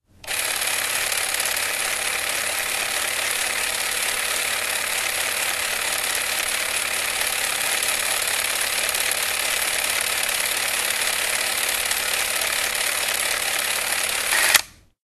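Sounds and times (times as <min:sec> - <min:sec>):
8mm film camera: 0:00.0 - 0:14.8.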